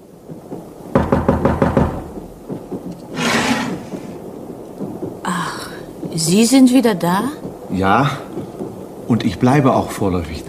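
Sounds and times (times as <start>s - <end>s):
knocking on a compartment door in a railway sleeping car: 0.9s - 4.2s
speech: 6.2s - 8.3s, 9.1s - 10.4s.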